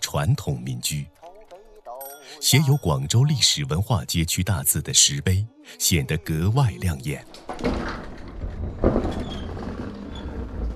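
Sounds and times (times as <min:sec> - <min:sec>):
speech: 0:00.1 - 0:01.2, 0:02.3 - 0:08.1
sliding lattice gate of old traditional house opening: 0:07.2 - 0:10.7.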